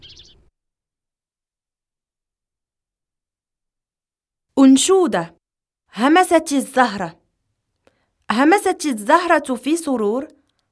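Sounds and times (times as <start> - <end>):
small birds twittering in high chirps: 0.0 - 0.5
speech: 4.6 - 7.2, 8.3 - 10.4.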